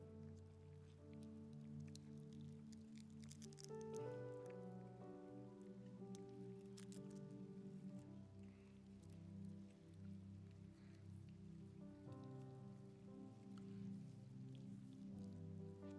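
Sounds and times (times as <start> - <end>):
soft sustained keyboard chords: 0.0 - 15.9
many small plastic communion packets being peeled open by a church audience: 1.8 - 4.6, 6.0 - 7.2.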